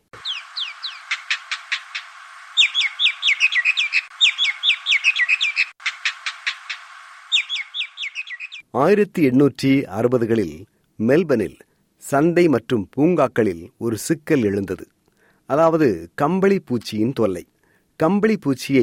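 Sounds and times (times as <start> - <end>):
Indian myna calls: 0.2 - 8.6
speech: 8.7 - 18.8.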